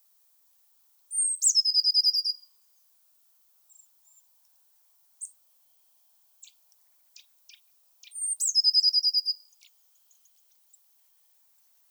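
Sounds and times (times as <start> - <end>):
Eurasian blue tit Cyanistes caeruleus singing whistle and trill: 1.2 - 2.4, 8.0 - 9.4.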